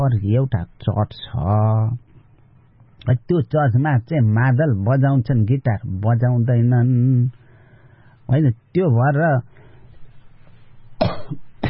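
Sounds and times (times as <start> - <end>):
speech: 0.0 - 2.0, 3.0 - 7.4, 8.3 - 9.5
elderly man's harsh coughing: 11.0 - 11.6.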